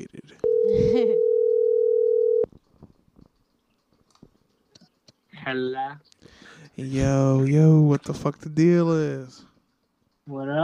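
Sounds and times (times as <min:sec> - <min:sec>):
telephone dial tone while a caller is being brought in: 0:00.4 - 0:02.5
speech: 0:05.5 - 0:06.1, 0:06.8 - 0:09.5, 0:10.3 - 0:10.6.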